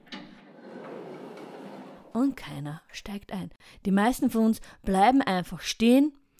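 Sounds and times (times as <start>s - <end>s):
gondola door sliding open: 0.0s - 2.2s
speech: 2.2s - 6.2s.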